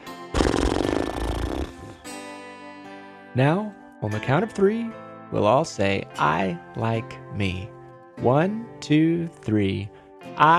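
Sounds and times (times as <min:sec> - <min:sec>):
voice imitating air rushing out of a balloon: 0:00.4 - 0:02.0
speech: 0:03.4 - 0:10.5.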